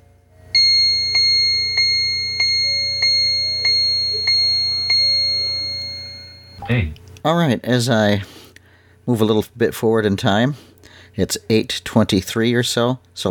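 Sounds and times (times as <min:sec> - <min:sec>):
faint low hum: 0:00.0 - 0:07.2
time and temperature clock chiming the hour: 0:00.5 - 0:06.6
speech: 0:06.7 - 0:08.4, 0:09.1 - 0:13.2.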